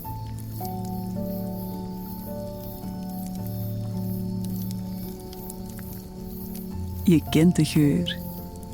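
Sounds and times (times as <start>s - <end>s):
soft sustained low drone of tones: 0.0s - 8.7s
wood campfire crackling and popping: 0.0s - 8.7s
speech: 7.1s - 8.2s.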